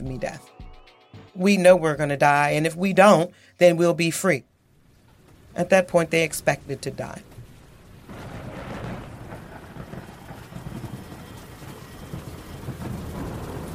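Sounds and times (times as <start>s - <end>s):
speech: 0.1s - 0.6s, 1.4s - 4.5s, 5.6s - 7.4s
dense heavy rain hissing: 4.8s - 13.7s
low rolling rumble of thunder: 7.4s - 13.7s.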